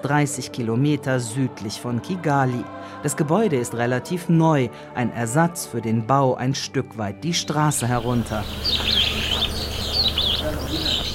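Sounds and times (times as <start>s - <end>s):
speech: 0.0s - 9.0s
several small birds chirping and twittering indoors: 7.6s - 11.1s.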